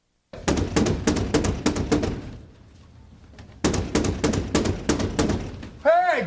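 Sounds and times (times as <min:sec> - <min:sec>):
man knocking on the front door of a house: 0:00.3 - 0:02.5, 0:03.5 - 0:05.8
speech: 0:05.8 - 0:06.2.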